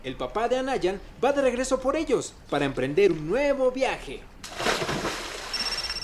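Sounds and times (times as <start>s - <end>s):
speech: 0.0s - 4.9s
water splashing: 4.4s - 6.0s
cell phone ringing with high pulsing electronic ring: 5.5s - 6.0s.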